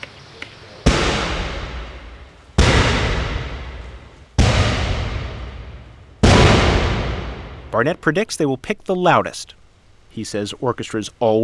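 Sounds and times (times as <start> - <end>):
booming cannon blasts: 0.8 - 7.8
speech: 7.7 - 11.4.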